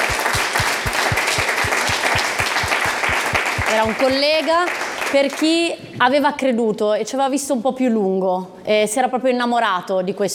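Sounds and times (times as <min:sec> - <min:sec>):
audience applause: 0:00.0 - 0:05.2
speech: 0:03.7 - 0:10.3.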